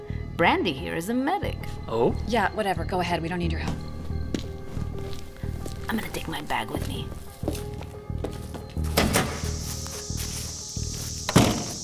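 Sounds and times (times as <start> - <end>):
cicadas buzzing loudly outdoors: 0.2 - 11.8
speech: 0.4 - 3.9, 5.9 - 7.6
heavy footsteps: 3.6 - 11.8.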